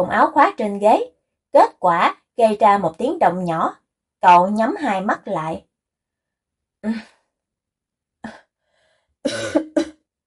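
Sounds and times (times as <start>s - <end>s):
speech: 0.0s - 5.7s, 6.8s - 7.1s, 9.2s - 9.8s
feverish man with a hoarse voice coughing softly: 9.3s - 10.0s.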